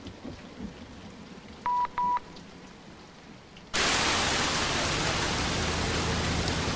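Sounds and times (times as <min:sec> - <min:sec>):
heavy rain, a dense hissing downpour: 0:00.0 - 0:06.7
short electronic beeps: 0:01.7 - 0:02.3.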